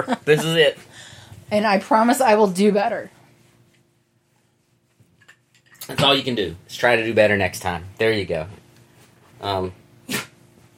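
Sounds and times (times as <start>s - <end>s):
laughter: 0.0s - 0.6s
speech: 0.0s - 0.9s, 1.5s - 3.2s, 5.9s - 8.6s, 9.4s - 10.2s
dog sneezing: 10.0s - 10.4s.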